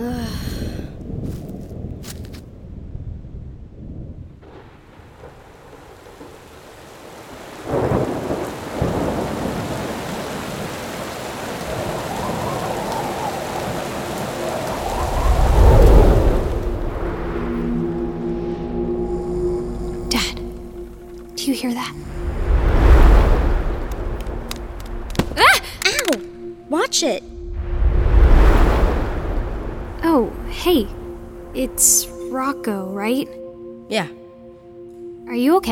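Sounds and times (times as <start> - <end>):
thunder rumbling with sharp crack and deep rolling boom: 0.0 - 32.6
steady rain hissing in a thunderstorm: 4.4 - 26.9, 27.5 - 32.5
speech: 27.0 - 27.3, 32.6 - 34.2, 35.4 - 35.7.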